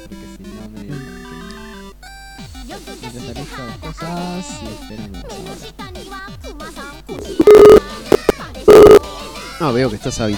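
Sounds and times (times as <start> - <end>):
speech: 2.7 - 8.8, 9.6 - 10.3
telephone ringing tone while a call is being placed: 7.4 - 9.0.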